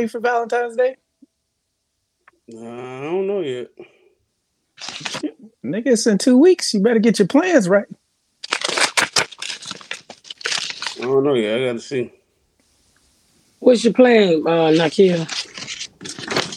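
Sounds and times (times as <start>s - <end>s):
speech: 0.0s - 1.0s, 2.5s - 3.9s, 4.8s - 8.0s, 11.0s - 12.2s, 13.6s - 15.5s
mail envelopes being ripped open: 4.8s - 5.2s, 8.4s - 11.2s, 14.6s - 16.5s.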